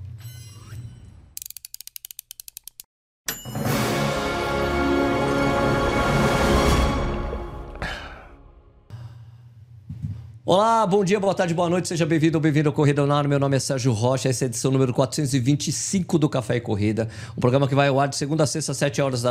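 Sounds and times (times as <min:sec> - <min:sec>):
ratcheting clicks in a show intro jingle: 0:01.4 - 0:02.9
loud full sustained musical swell of a show intro jingle: 0:03.6 - 0:08.8
speech: 0:10.5 - 0:19.2.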